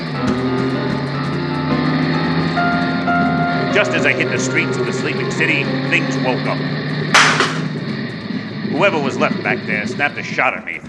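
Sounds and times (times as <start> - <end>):
car engine roaring: 0.0 - 10.8
tires spinning and squealing against pavement: 0.0 - 10.8
speech: 3.8 - 7.4, 8.8 - 10.8.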